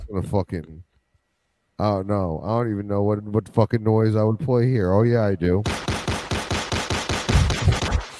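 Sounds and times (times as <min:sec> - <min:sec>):
speech: 0:00.1 - 0:00.9, 0:01.8 - 0:05.9
rapid automatic gunfire sound effect: 0:05.6 - 0:08.1.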